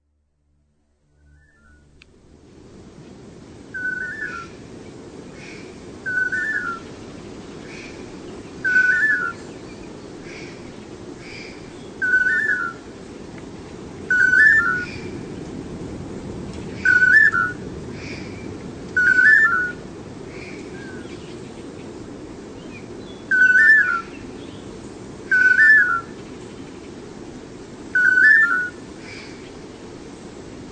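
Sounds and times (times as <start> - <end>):
unidentified pair of birds calling: 3.7 - 4.6, 5.3 - 12.8, 13.6 - 15.4, 16.6 - 27.0, 27.9 - 30.0.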